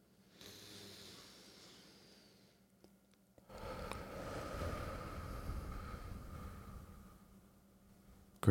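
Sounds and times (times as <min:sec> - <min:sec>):
deep breath inhale and exhale during meditation: 0:00.3 - 0:02.6, 0:03.5 - 0:07.6.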